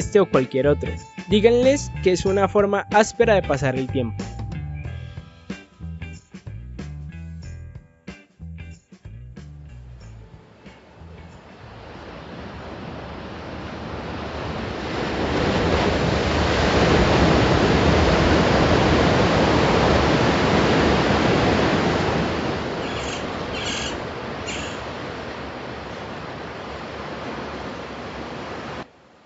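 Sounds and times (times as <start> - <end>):
speech: 0.0 - 4.3
Pacific Ocean surf breaking on shore: 10.4 - 29.2.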